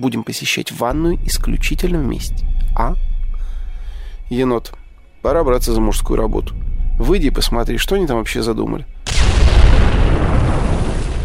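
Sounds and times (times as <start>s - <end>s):
speech: 0.0s - 3.1s, 4.3s - 9.0s
loud explosion with a deep rumbling roar under a window: 9.0s - 11.2s.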